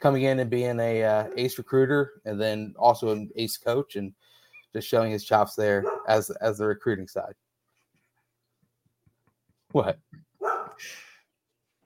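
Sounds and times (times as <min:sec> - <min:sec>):
speech: 0:00.0 - 0:07.4, 0:09.7 - 0:10.2
dog barking: 0:05.8 - 0:06.2, 0:10.4 - 0:10.8.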